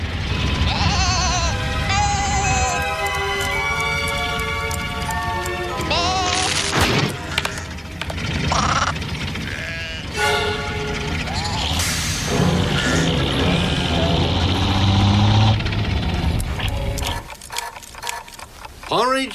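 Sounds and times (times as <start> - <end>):
low rumbling background: 0.0 - 17.3
sheep bleating: 0.3 - 2.9, 5.7 - 6.7, 8.4 - 11.8.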